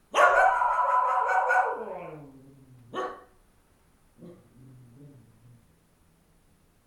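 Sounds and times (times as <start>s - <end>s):
dog barking in a village at night: 0.1s - 2.2s, 2.9s - 3.3s.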